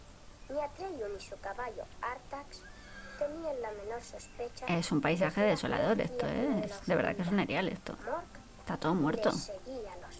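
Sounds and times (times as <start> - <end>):
steady hiss: 0.0 - 10.1
speech: 0.5 - 10.1
white horse whinnying: 2.6 - 3.3.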